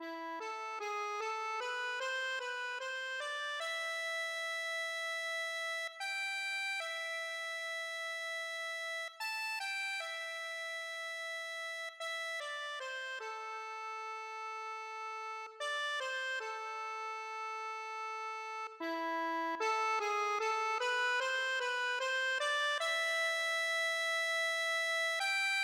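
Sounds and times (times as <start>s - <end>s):
accordion: 0.0s - 25.6s.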